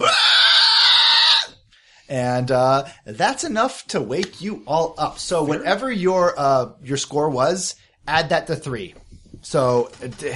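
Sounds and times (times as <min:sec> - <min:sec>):
person vocally imitating a monster's panicked shriek: 0:00.0 - 0:01.6
speech: 0:02.1 - 0:10.3.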